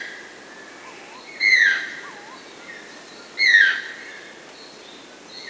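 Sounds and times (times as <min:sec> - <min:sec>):
Channel-billed Toucan Ramphastos vitellinus in Peru: 0:00.6 - 0:03.7.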